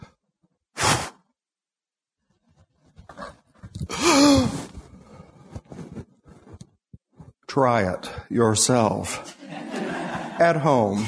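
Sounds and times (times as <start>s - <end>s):
person breathing out: 3.8s - 5.6s
speech: 7.6s - 9.4s, 10.4s - 11.0s
laughter: 9.2s - 11.0s.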